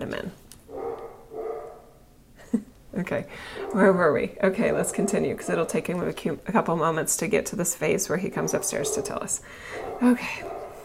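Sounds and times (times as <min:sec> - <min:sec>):
faint hum: 0:00.0 - 0:10.8
dog barking: 0:00.7 - 0:02.0, 0:03.6 - 0:04.0, 0:04.6 - 0:05.7, 0:08.4 - 0:10.8
speech: 0:03.0 - 0:10.6.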